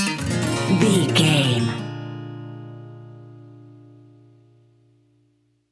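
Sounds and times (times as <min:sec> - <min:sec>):
blues music bumper: 0:00.2 - 0:04.2.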